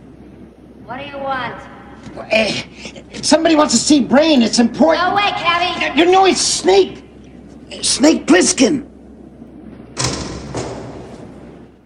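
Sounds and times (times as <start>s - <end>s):
low hiss: 0.0s - 11.8s
speech: 0.9s - 7.0s, 7.7s - 8.9s
door opening with a sharp thump: 10.0s - 11.3s.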